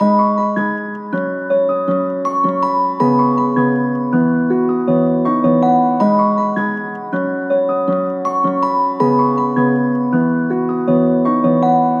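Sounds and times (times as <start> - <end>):
nostalgic melody loop in G sharp minor: 0.0 - 11.9.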